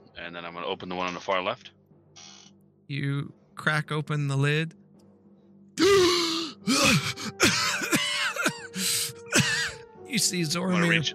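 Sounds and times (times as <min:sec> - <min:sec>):
speech: 0:00.2 - 0:01.8, 0:02.9 - 0:04.8, 0:06.6 - 0:07.6, 0:10.1 - 0:11.1
man gasping for air: 0:05.8 - 0:09.4.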